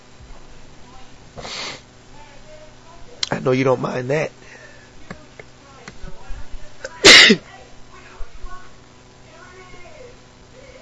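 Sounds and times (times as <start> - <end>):
sniffling and nasal breathing: 1.4 - 1.9
speech: 3.4 - 4.6
person sneezing: 6.9 - 7.4.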